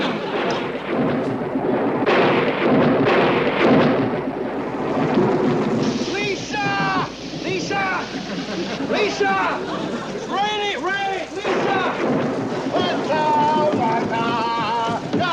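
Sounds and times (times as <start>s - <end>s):
laughter: 0.0s - 0.9s, 6.1s - 14.4s
heavy steady rain: 0.0s - 15.3s
loud rolls of thunder: 0.0s - 15.3s.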